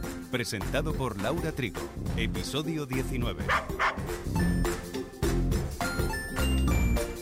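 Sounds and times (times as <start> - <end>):
speech: 0.3 - 4.9
dog barking: 3.5 - 4.1
bright musical backing with chiming tones: 4.3 - 7.2.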